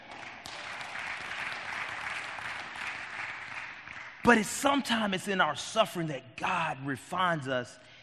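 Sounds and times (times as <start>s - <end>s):
large crowd applauding: 0.0s - 5.0s
speech: 4.2s - 7.9s.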